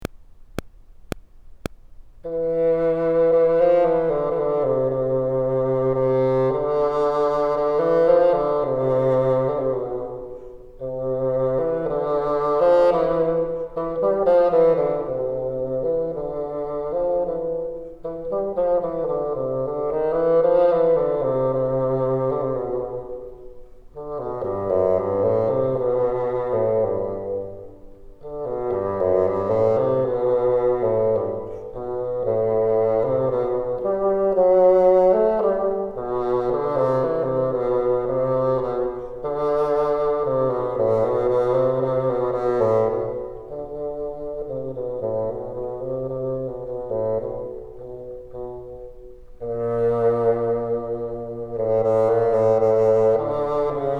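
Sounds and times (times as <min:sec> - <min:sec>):
bassoon playing bottom part: 0:02.3 - 0:53.9.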